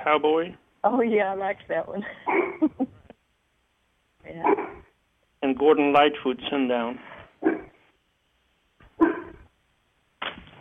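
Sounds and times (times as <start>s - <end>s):
speech: 0.0s - 2.9s, 4.3s - 4.8s, 5.4s - 7.6s
dog barking: 2.3s - 2.7s, 4.4s - 4.9s, 7.4s - 7.8s, 8.9s - 9.5s.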